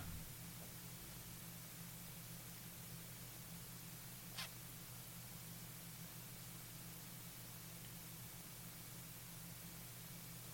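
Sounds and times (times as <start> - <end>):
low constant hum: 0.0 - 10.5
microphone hiss: 0.0 - 10.5.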